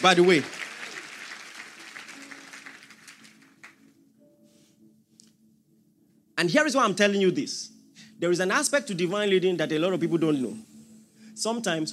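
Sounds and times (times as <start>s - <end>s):
speech: 0.0s - 0.6s, 6.4s - 10.7s, 11.4s - 11.9s
audience applause: 0.0s - 3.8s.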